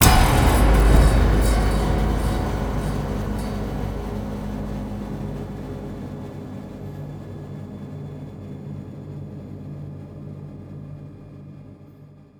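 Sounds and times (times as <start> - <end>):
long horror sound: 0.0 - 7.1.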